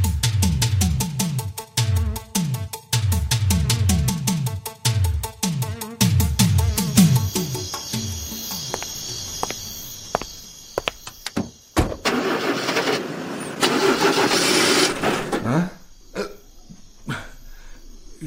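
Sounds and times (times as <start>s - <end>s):
crickets chirping: 0.0s - 18.2s
car engine cranking but failing to start: 11.8s - 15.5s.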